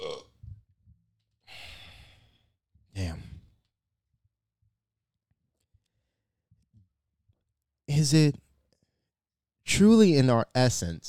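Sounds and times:
low burp: 0.0 - 0.4
breathy airy exhale: 1.5 - 2.5
speech: 8.0 - 8.4, 9.7 - 11.0.

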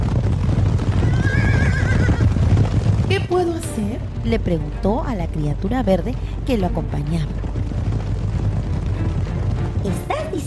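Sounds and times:
rumble of drumming hooves of a herd of wild horses: 0.0 - 10.4
wild horses whinnying: 0.6 - 3.1
speech: 3.2 - 7.6, 9.8 - 10.4.

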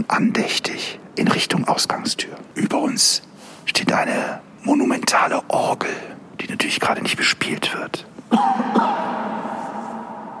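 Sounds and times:
speech: 0.0 - 9.4
man coughing in a reverberant space: 8.3 - 9.7.

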